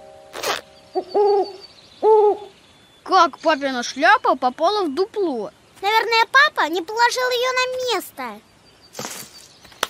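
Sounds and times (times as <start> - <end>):
owl hooting inside a tree hollow: 0.3 - 2.6
speech: 3.2 - 9.1.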